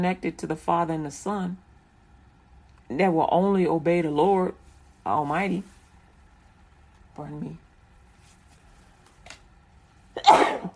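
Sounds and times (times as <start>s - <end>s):
speech: 0.0s - 1.6s, 2.9s - 5.8s, 7.2s - 7.6s
loud sneeze: 10.2s - 10.7s.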